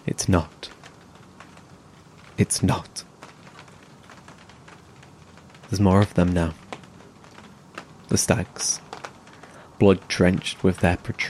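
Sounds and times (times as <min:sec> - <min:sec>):
speech: 0:00.0 - 0:00.8, 0:02.4 - 0:03.1, 0:05.7 - 0:06.6, 0:08.1 - 0:08.8, 0:09.8 - 0:11.2
steady rain falling: 0:00.0 - 0:11.2.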